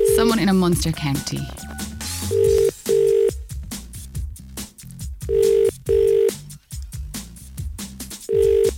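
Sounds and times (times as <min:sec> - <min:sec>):
music: 0:00.0 - 0:08.7
speech: 0:00.2 - 0:01.6
outgoing telephone call double-burst ringing tone: 0:01.2 - 0:03.4, 0:05.2 - 0:06.4, 0:08.3 - 0:08.7.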